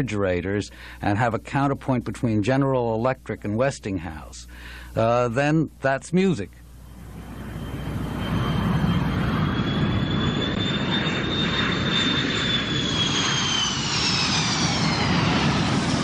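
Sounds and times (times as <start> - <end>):
speech: 0.0 - 6.6
airplane engine roaring overhead: 6.7 - 16.0.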